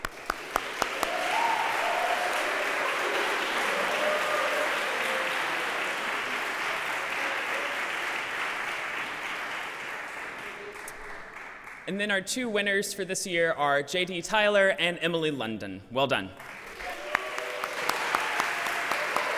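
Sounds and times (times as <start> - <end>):
room full of people applauding: 0.0 - 11.8, 16.4 - 19.3
speech: 11.9 - 16.6.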